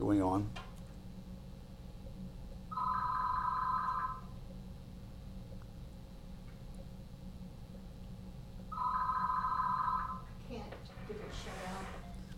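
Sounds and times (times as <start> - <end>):
speech: 0.0 - 0.6
steady low hum: 0.0 - 12.3
telephone trilling electronic ring: 2.7 - 4.3, 8.7 - 10.3.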